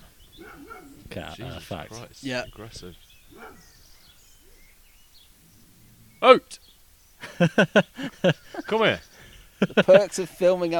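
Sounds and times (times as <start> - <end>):
dog barking while chasing other dogs in a garden: 0.4 - 1.0, 3.3 - 3.7
speech: 1.1 - 3.7, 6.2 - 6.6, 7.4 - 10.7
laughter: 7.2 - 10.4.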